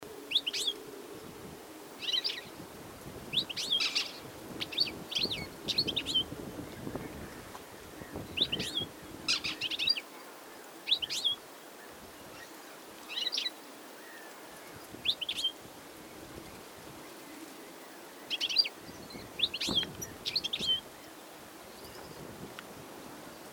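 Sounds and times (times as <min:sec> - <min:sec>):
European goldfinch Carduelis carduelis: 0:00.3 - 0:00.8, 0:02.0 - 0:02.5, 0:03.3 - 0:06.3, 0:08.0 - 0:11.4, 0:12.3 - 0:15.6, 0:18.0 - 0:21.2.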